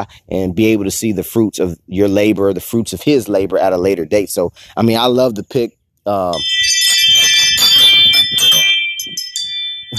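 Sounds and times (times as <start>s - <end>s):
speech: 0.0s - 6.6s
phone app electronic chimes: 6.4s - 9.9s.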